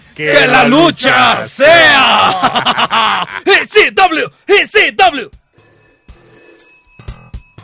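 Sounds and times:
speech: 0.2 - 5.4
laughter: 2.0 - 3.7
old-style telephone bell ringing for an incoming call: 5.5 - 7.6.

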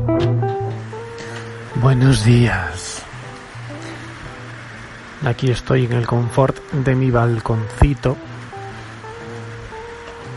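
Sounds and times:
faint low hum of traffic: 0.0 - 10.3
steady storm rain pattering on window sills: 0.0 - 10.3
speech: 1.8 - 3.0, 5.2 - 8.3.

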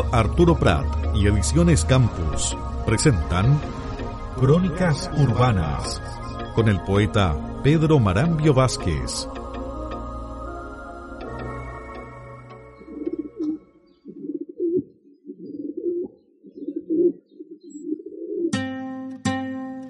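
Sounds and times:
low rumbling: 0.0 - 13.4
speech: 0.1 - 3.8, 4.4 - 9.4
pigeons cooing in a city plaza: 12.7 - 18.6.

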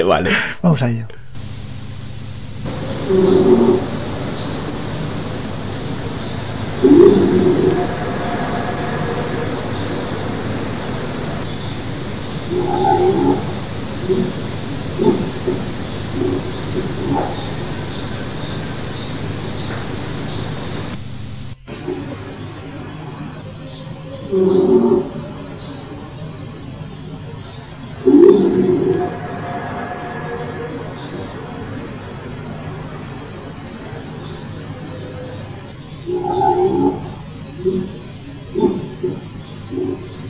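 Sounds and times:
speech: 0.0 - 1.2, 3.1 - 4.0
steady static hiss of a psychophony recording: 0.0 - 40.2
laughter: 0.1 - 0.7.

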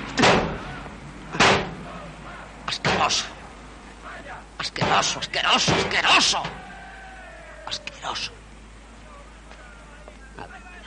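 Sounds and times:
heavy metallic thuds of someone striking a car: 0.0 - 2.0, 2.7 - 3.4, 4.6 - 6.7
speech: 3.1 - 3.3, 4.6 - 6.6, 7.7 - 8.4.

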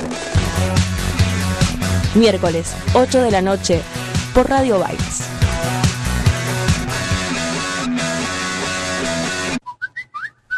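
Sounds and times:
busy music: 0.0 - 9.6
speech: 2.1 - 5.8
short whistled jingle marking advertising break: 9.6 - 10.5.

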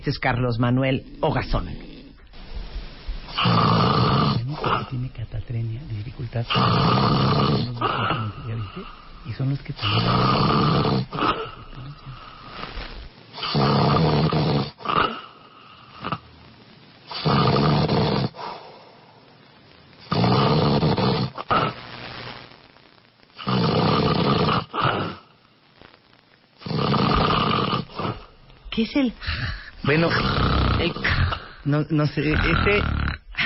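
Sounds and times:
speech: 0.0 - 1.9, 4.7 - 12.3, 28.9 - 32.9
man with a deviated nasal septum snoring loudly: 3.3 - 5.0, 6.4 - 16.2, 17.1 - 18.7, 20.0 - 21.8, 23.4 - 25.2, 26.6 - 28.3, 29.3 - 33.4.

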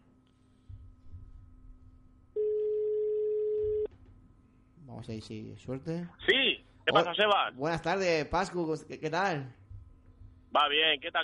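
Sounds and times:
phone ringback tone while placing a birthday call: 2.4 - 3.9
speech: 5.0 - 9.6, 10.5 - 11.2.

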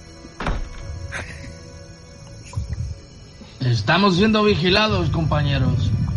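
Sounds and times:
door slamming shut: 0.3 - 1.1
speech: 3.6 - 6.0.

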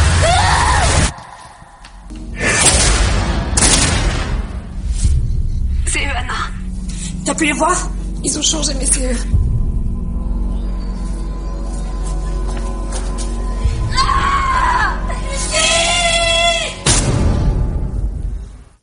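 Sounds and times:
shrill drawn-out screams from a horror film: 0.0 - 1.8, 13.9 - 16.8
low droning horror film soundtrack: 0.0 - 18.8
speech: 7.4 - 9.4.

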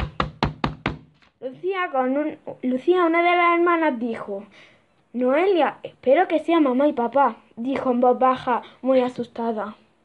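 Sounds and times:
firm knocking on a door: 0.0 - 1.2
speech: 1.4 - 9.8.

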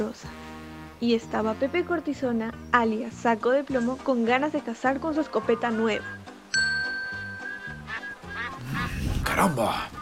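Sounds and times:
speech: 0.0 - 0.4, 1.0 - 6.2, 9.4 - 10.0
bright ringing chime: 6.5 - 7.8
higher squeaky cries: 7.5 - 8.6
flock of ducks quacking: 7.6 - 10.0.

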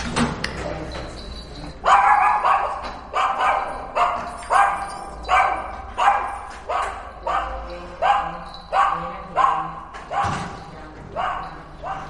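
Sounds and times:
female dog barking shrilly in an apartment building: 1.8 - 10.5.

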